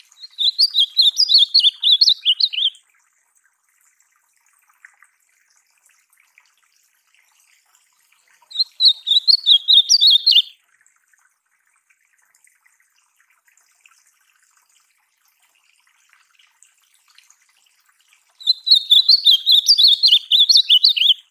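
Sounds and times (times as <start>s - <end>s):
ultramarine grosbeak song of warbled slurred whistles: 0.2s - 2.8s, 8.5s - 10.6s, 18.4s - 21.2s.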